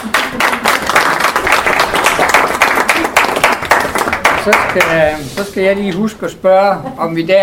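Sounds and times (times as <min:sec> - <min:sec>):
room full of people applauding for the accounts: 0:00.0 - 0:05.2
speech: 0:04.4 - 0:07.4.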